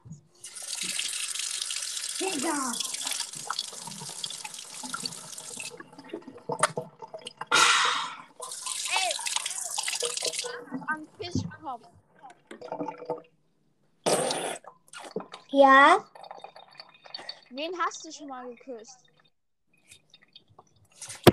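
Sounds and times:
tap water running from a bathroom tap: 0.3 - 11.4, 14.3 - 19.2
short spoken exclamation: 2.2 - 2.9
speech: 2.2 - 2.9, 11.3 - 12.1, 15.6 - 16.1, 17.6 - 19.1.

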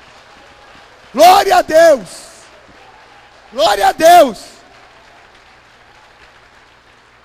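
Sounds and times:
applause from a sizable audience: 0.0 - 7.2
speech: 1.1 - 2.2, 3.5 - 4.5.

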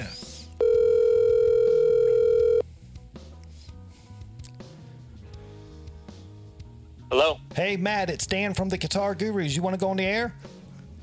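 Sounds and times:
telephone ringback tone on an outgoing call: 0.6 - 2.6
speech: 7.6 - 11.0.

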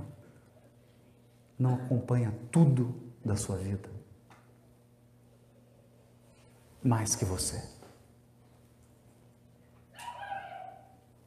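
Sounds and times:
quiet hum: 0.0 - 11.2
speech: 1.6 - 4.0, 6.8 - 7.8
dog giving a short whiny yelping bark: 10.0 - 11.0.

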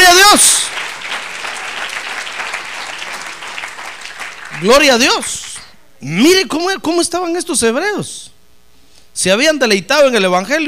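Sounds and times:
audience applauding: 0.0 - 5.7
speech: 4.6 - 8.3, 9.2 - 10.6.

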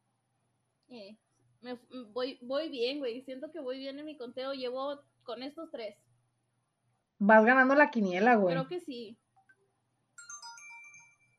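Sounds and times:
speech: 0.9 - 6.0, 7.2 - 9.2
cell phone ringtone with bright multi-note electronic melody: 10.2 - 11.3.

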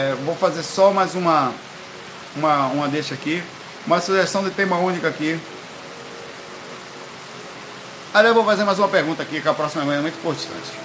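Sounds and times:
speech: 0.0 - 1.7, 2.3 - 5.6, 8.2 - 10.8
steady rainfall outdoors in Recife Brazil: 0.0 - 10.8.

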